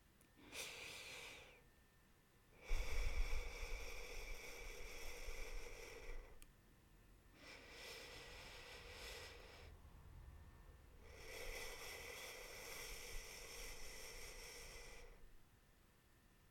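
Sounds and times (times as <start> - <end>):
person breathing out slowly: 0.4 - 1.6, 2.6 - 6.4, 7.4 - 9.8, 11.0 - 15.3.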